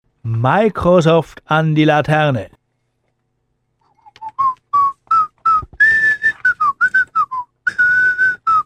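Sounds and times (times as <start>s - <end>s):
speech: 0.2s - 2.6s
person whistling a melody: 4.0s - 8.6s.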